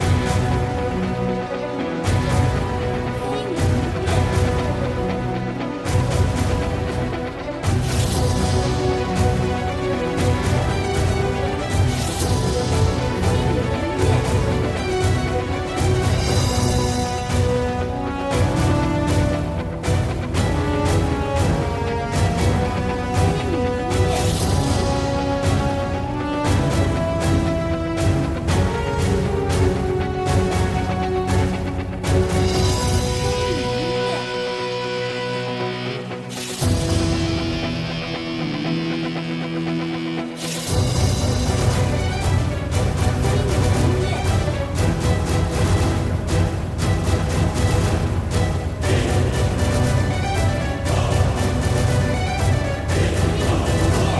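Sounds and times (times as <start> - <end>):
main menu background music: 0.0 - 54.1.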